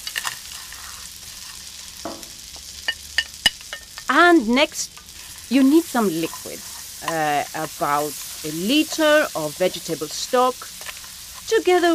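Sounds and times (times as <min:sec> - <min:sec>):
arborio rice scraping as stirred in a hot pan: 0:00.0 - 0:02.1, 0:05.1 - 0:11.9
arborio rice sizzling in a hot pan: 0:00.0 - 0:11.9
speech: 0:04.1 - 0:10.8, 0:11.5 - 0:11.9.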